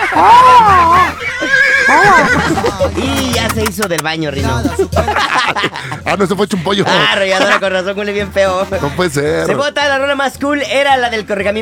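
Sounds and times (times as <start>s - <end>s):
laughter: 0.0s - 7.7s
speech: 0.1s - 0.7s, 2.0s - 11.6s
horse neighing: 0.9s - 2.5s.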